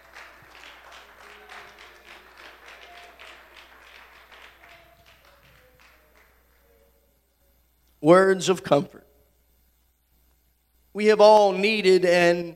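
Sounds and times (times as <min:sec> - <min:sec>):
standing audience clapping: 0:00.0 - 0:06.8
speech: 0:08.0 - 0:09.1, 0:11.0 - 0:12.5.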